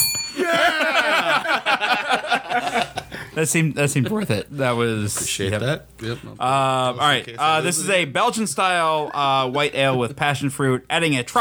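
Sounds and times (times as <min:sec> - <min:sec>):
hand bell ringing: 0:00.0 - 0:01.0
laughter: 0:00.3 - 0:10.8
speech: 0:03.4 - 0:11.3.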